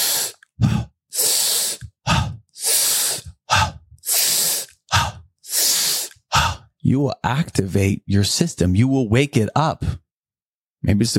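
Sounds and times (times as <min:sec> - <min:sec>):
fast rhythmic breathing in a breathwork exercise: 0:00.0 - 0:06.7
speech: 0:06.8 - 0:10.0, 0:10.8 - 0:11.1.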